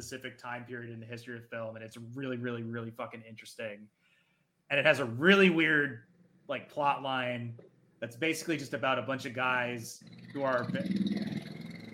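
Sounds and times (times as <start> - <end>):
speech: 0.0 - 4.0, 4.7 - 11.2
neighbor's motorcycle engine passing outside: 9.2 - 11.9.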